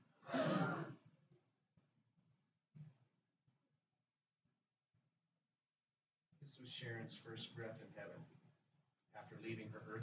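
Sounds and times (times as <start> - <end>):
audience gasping in unison: 0.2 - 0.9
speech: 6.5 - 8.4, 9.2 - 10.0.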